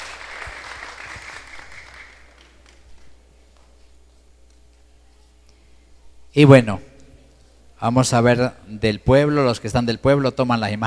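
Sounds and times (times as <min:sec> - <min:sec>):
church audience applauding: 0:00.0 - 0:03.0
speech: 0:06.3 - 0:06.9, 0:07.8 - 0:10.8.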